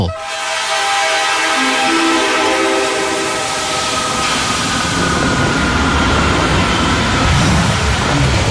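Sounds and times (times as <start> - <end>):
sustained horn-like train tones: 0.2 - 5.9
train rumble on the world's highest railway toward Lhasa: 0.2 - 8.4.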